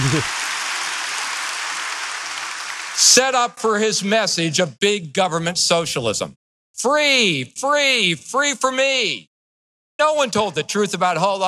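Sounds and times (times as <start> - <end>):
crowd applauding: 0.0 - 3.3
speech: 0.1 - 0.4, 3.0 - 9.3, 10.0 - 11.4.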